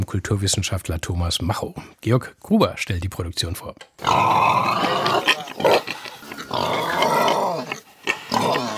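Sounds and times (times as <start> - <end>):
speech: 0.0 - 5.9
pig grunting and snorting loudly: 4.0 - 8.7.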